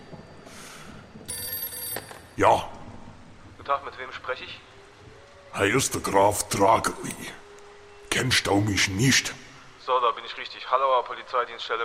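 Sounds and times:
hissing noise: 0.0s - 1.3s, 2.3s - 11.8s
telephone bell ringing: 1.3s - 2.4s
speech: 2.4s - 2.8s, 3.7s - 4.7s, 5.5s - 7.4s, 8.1s - 11.8s.

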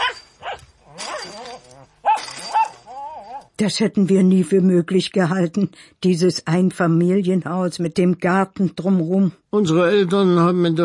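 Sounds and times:
poodle barking: 0.0s - 3.5s
speech: 3.6s - 10.8s.

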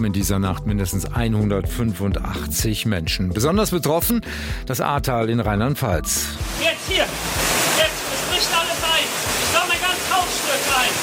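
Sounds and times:
speech: 0.0s - 7.4s
rushing floodwater flooding valleys in the Eifel, Germany, after heavy rain: 6.4s - 11.0s.

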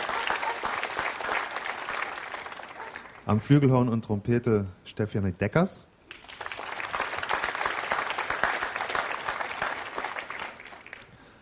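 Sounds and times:
audience applause: 0.0s - 3.3s, 6.1s - 11.0s
speech: 3.3s - 5.9s.

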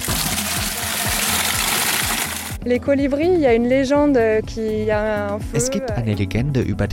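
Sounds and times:
water pouring from a canister into a watering can: 0.0s - 2.6s
speech: 2.6s - 6.9s.

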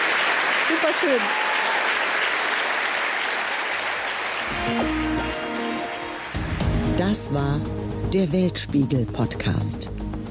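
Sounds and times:
small group clapping: 0.0s - 6.8s
speech: 0.7s - 1.5s, 7.0s - 10.0s.

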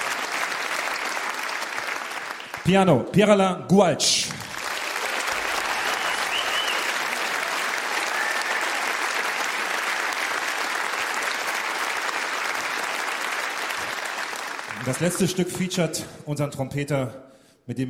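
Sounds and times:
sizable audience applause: 0.0s - 2.7s, 4.3s - 15.5s
speech: 2.6s - 4.4s, 14.9s - 17.8s.

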